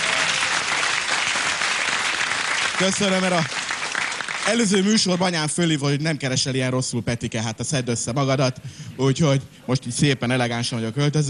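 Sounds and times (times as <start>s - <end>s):
audience applause at a live stage comedy show: 0.0s - 5.2s
speech: 2.8s - 3.6s, 4.5s - 11.2s.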